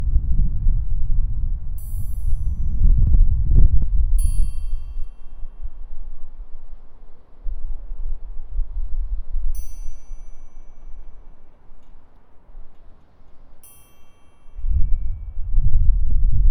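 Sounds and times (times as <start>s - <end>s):
wind: 0.0s - 16.4s
triangle: 1.8s - 7.0s, 9.4s - 16.4s.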